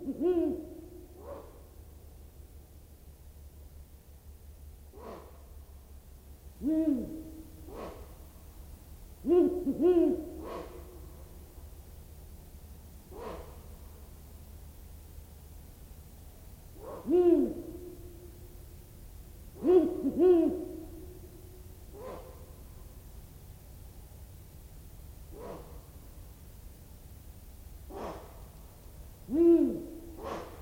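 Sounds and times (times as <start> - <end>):
owl hooting at night: 0.0 - 1.6, 6.6 - 8.4, 9.2 - 11.5, 13.1 - 14.0, 16.8 - 18.6, 19.5 - 23.0, 29.2 - 30.6
steady hiss of quiet night background: 0.0 - 30.6.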